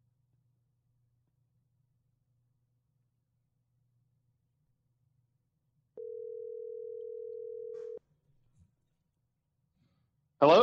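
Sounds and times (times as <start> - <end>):
telephone dial tone after a disconnected call: 6.0 - 8.0
speech: 10.4 - 10.6.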